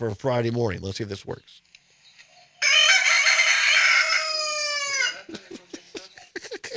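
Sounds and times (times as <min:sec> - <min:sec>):
speech: 0:00.0 - 0:01.7
Salvadoran rooster crowing: 0:02.6 - 0:05.3
Salvadoran rooster clucking and chattering: 0:02.6 - 0:06.2
laughter: 0:04.9 - 0:06.7.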